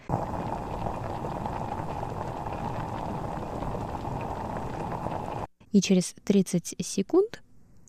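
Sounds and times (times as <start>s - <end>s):
pot of water at a rolling boil for blanching celery and red bell pepper: 0.0s - 5.5s
speech: 5.7s - 7.4s.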